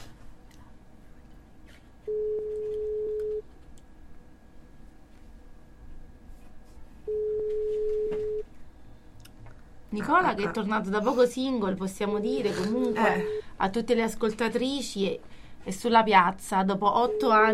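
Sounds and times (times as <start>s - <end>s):
ringback tone of an outgoing telephone call: 2.1s - 3.4s, 7.1s - 8.5s
speech: 10.0s - 17.5s.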